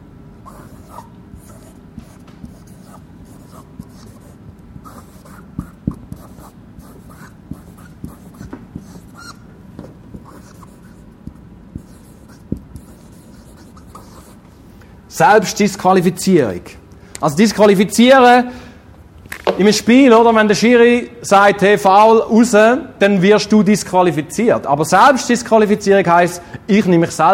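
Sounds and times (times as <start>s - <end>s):
long word being written on a board: 0.4s - 14.5s
speech: 15.2s - 18.6s, 19.6s - 27.3s.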